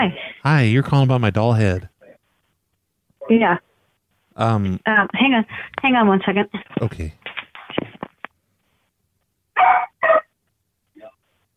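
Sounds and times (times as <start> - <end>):
speech: 0.0 - 1.9, 3.3 - 3.7, 4.4 - 7.2
dog barking: 9.6 - 10.3
faint yip: 9.6 - 10.3.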